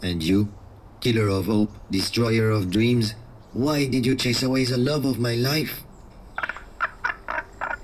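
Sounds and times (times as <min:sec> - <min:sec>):
speech: 0:00.0 - 0:06.5
short raspy frog-like croaking speech: 0:06.3 - 0:07.8.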